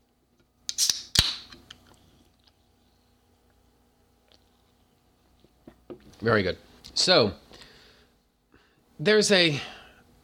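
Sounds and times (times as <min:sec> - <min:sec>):
person sipping soda: 0:01.7 - 0:06.1
speech: 0:06.2 - 0:07.4, 0:09.0 - 0:09.8.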